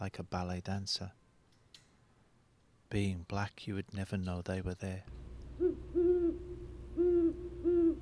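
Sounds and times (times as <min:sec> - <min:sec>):
speech: 0:00.0 - 0:01.2, 0:02.9 - 0:05.2
great horned owl hooting: 0:05.6 - 0:08.0.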